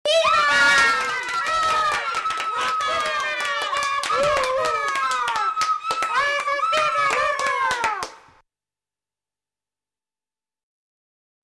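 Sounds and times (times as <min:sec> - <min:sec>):
children applauding: 0:00.1 - 0:08.4.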